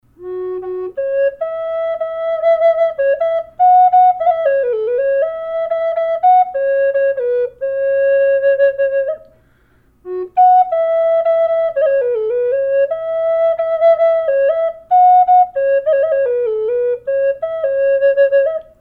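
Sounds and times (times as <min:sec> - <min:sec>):
flute playing F sharp: 0:00.2 - 0:18.7.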